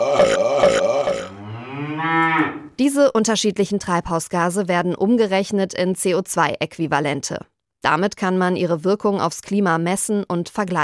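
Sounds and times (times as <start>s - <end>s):
cow mooing: 0.0s - 2.7s
speech: 2.8s - 10.8s.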